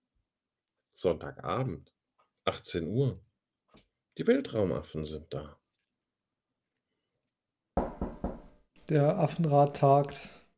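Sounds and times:
speech: 1.0 - 3.3, 4.2 - 5.6, 8.9 - 10.4
firm knocking on a door: 7.8 - 8.6.

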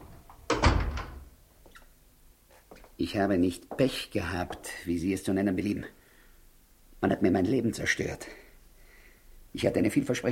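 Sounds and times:
door being closed: 0.5 - 1.3
speech: 3.0 - 6.0, 7.0 - 8.4, 9.5 - 10.2.

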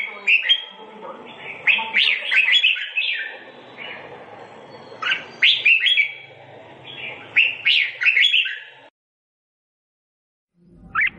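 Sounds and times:
sooty-headed bulbul singing bright bubbling whistled phrases: 0.0 - 8.9.

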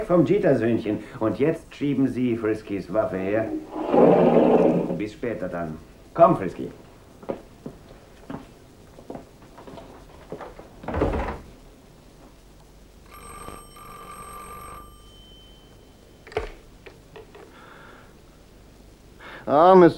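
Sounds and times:
speech: 0.0 - 7.4, 19.5 - 19.9
telephone ringing with a bright electronic trill: 13.0 - 16.6.

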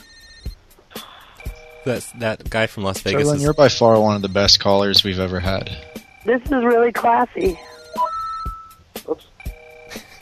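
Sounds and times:
phone text message alert tones: 1.0 - 9.9
speech: 1.8 - 7.7
brief pitched beeps: 7.6 - 8.8.

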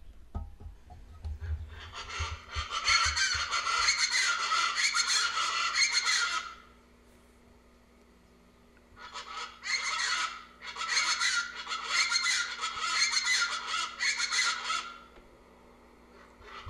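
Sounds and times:
chachalacas in raucous calling chorus: 1.3 - 6.7, 9.0 - 15.2, 16.1 - 16.6.

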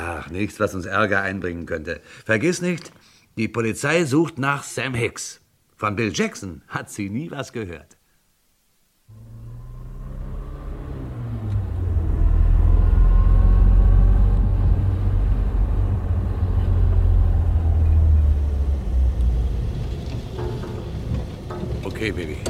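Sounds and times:
speech: 0.2 - 8.0, 22.0 - 22.4
parked car engine running: 9.1 - 22.4.

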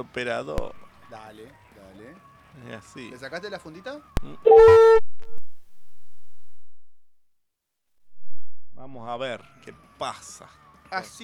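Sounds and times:
speech: 0.0 - 5.0, 8.9 - 11.2
mobile phone call tone: 4.2 - 6.7.

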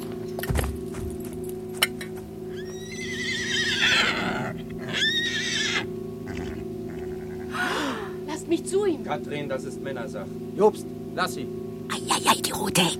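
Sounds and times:
steady low hum: 0.0 - 12.9
trembling horse whinnying shrilly: 2.6 - 8.1
speech: 8.6 - 11.6, 12.3 - 12.9.

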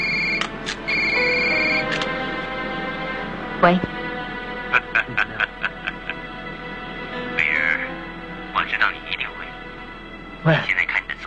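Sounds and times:
telephone ringing with thin high electronic tone: 0.0 - 2.0
steady noise: 0.0 - 11.2
speech: 3.6 - 4.0, 10.5 - 10.7
laughter: 4.7 - 6.4.

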